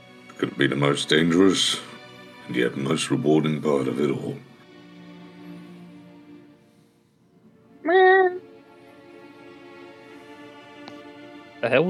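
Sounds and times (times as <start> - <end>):
speech: 0.4 - 1.9, 2.5 - 4.5
cat-like meow: 7.8 - 8.4.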